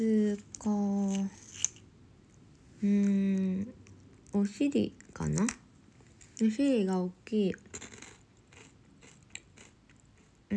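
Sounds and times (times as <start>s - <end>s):
speech: 0.0s - 1.4s, 4.4s - 5.6s, 6.4s - 7.9s
crunching on a rice cracker flavoured with green laver: 7.7s - 10.4s.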